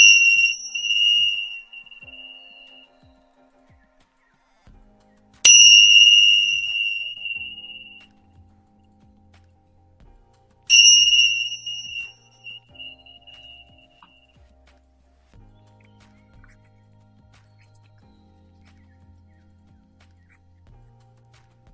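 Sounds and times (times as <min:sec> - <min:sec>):
Tibetan bell being rung during an energy-healing session: 0:00.0 - 0:03.0, 0:05.5 - 0:08.1, 0:10.7 - 0:13.8.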